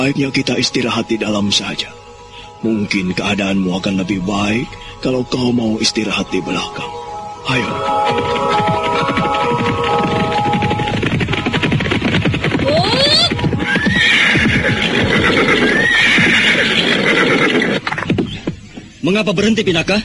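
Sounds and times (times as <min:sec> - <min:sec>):
speech: 0:00.0 - 0:02.0, 0:02.6 - 0:10.4, 0:19.0 - 0:20.0
horse hooves clip-clopping: 0:07.5 - 0:19.5
horse neighing: 0:12.6 - 0:18.0.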